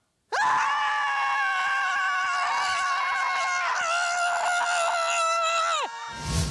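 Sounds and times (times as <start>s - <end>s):
group of people screaming together: 0.3s - 6.3s.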